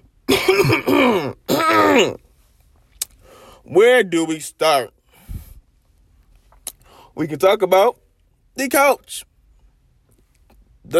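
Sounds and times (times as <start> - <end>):
rough voiced throat clearing: 0.3 - 2.2
speech: 0.6 - 0.9, 2.0 - 2.2, 3.7 - 5.0, 7.2 - 8.0, 8.6 - 9.3.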